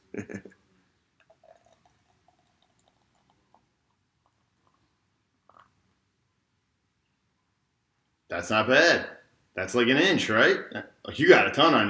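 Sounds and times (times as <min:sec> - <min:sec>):
peanut butter and jelly beer pouring into a glass: 0:01.2 - 0:04.8
speech: 0:08.4 - 0:11.8.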